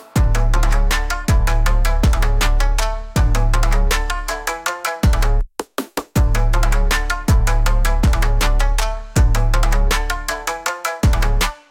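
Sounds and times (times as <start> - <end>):
trap bass: 0.2 - 5.4, 6.2 - 11.5.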